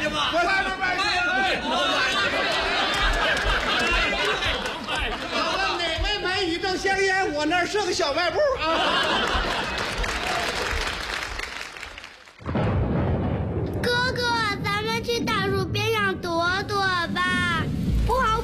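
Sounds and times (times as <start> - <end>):
laughter: 0.1 - 6.3, 8.2 - 10.9
speech: 6.9 - 9.6
deep rumble of thunder: 12.4 - 18.4
hissing rain pouring down: 17.0 - 18.4.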